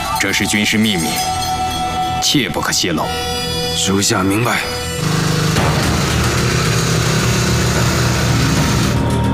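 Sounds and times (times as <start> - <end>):
speech: 0.2 - 1.4, 2.2 - 5.3
Japanese motorcycle engine droning: 4.9 - 9.2.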